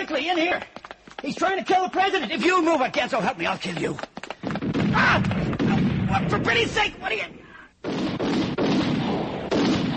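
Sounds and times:
speech: 0.1 - 4.1, 6.1 - 8.5
gunshots fired at a man: 4.4 - 6.8, 7.8 - 9.9.

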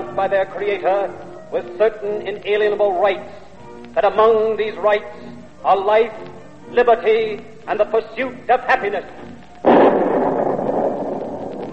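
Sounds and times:
speech: 0.2 - 9.2
single loud cannon boom with rolling rumble: 9.6 - 11.7.

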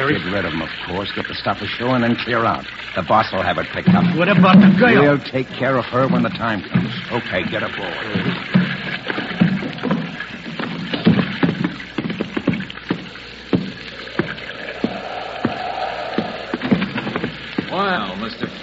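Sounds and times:
soft splashing of rowboat through water: 0.0 - 18.6
speech: 0.1 - 8.4
wooden knocks of rowboat oars: 3.8 - 5.2, 6.1 - 18.4.

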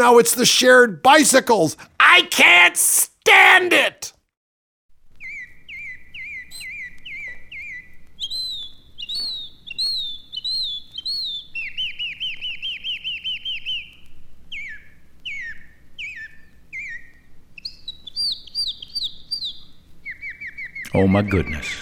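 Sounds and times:
speech: 0.0 - 4.2, 21.0 - 21.8
birds chirping and singing: 5.2 - 21.8.

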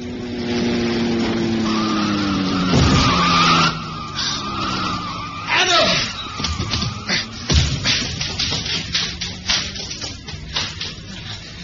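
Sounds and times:
car engine roaring at speed: 0.0 - 11.6
car tires squealing in a skid: 0.0 - 11.6
heavy thud of a car hitting a man crossing the road: 6.6 - 8.8.

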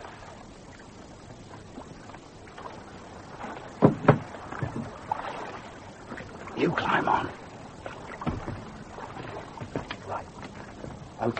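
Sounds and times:
faint water lapping: 0.0 - 11.3
rowboat knocking against the hull of a larger boat: 3.8 - 5.2, 8.1 - 11.1.

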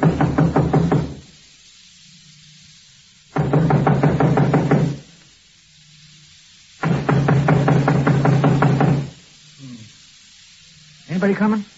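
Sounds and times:
loud rapid knocking on a door: 0.0 - 1.2, 3.4 - 5.0, 6.8 - 9.2
speech: 11.2 - 11.7.

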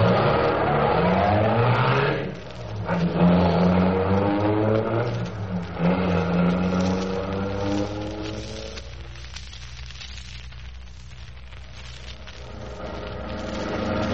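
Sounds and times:
car engine revving and accelerating away: 0.0 - 8.3.

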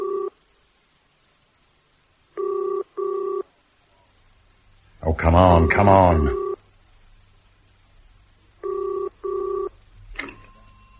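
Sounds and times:
telephone ringing tone on a call from a telephone booth: 0.0 - 0.3, 2.4 - 3.5, 6.2 - 6.6, 8.6 - 10.9
speech: 5.2 - 6.4.

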